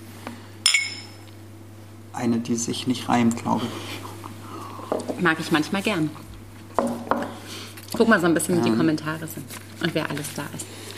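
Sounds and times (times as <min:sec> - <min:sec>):
two glasses clinking in a toast: 0:00.6 - 0:01.2
speech: 0:02.2 - 0:04.1, 0:05.2 - 0:06.2, 0:08.0 - 0:10.8.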